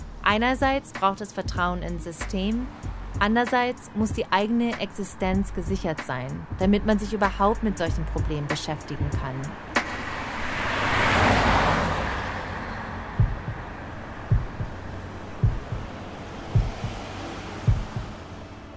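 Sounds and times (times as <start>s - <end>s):
speech: 0.2s - 9.7s
road rumble from a car on a highway: 1.6s - 18.7s
tires rolling over pavement seams: 9.6s - 18.7s.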